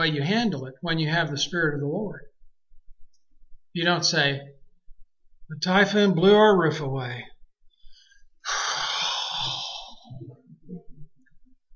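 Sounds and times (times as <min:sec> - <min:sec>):
speech: 0:00.0 - 0:02.3, 0:03.7 - 0:04.6, 0:05.5 - 0:07.3
deep exhaling breath: 0:07.8 - 0:10.3.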